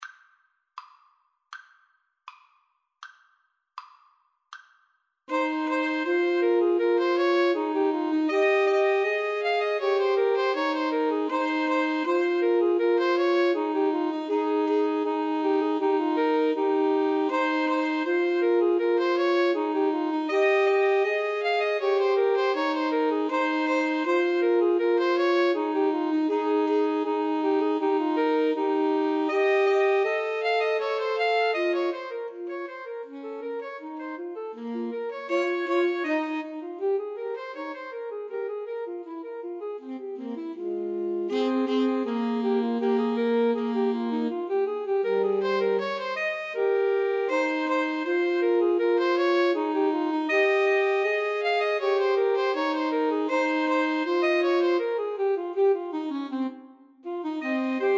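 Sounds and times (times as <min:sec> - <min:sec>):
saxophone playing a gavotte from a cello suite: 0:05.3 - 0:57.9.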